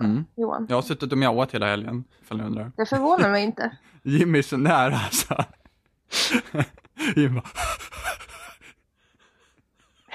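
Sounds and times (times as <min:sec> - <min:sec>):
speech: 0:00.0 - 0:05.6, 0:06.2 - 0:07.8
laughter: 0:04.6 - 0:10.0
rapid hyperactive panting breaths: 0:06.1 - 0:10.1.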